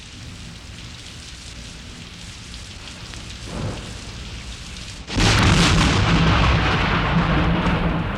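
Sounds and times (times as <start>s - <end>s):
steady rain hissing: 0.0s - 8.1s
loud crack of thunder rolling into heavy rumble: 3.4s - 4.2s, 5.1s - 8.1s.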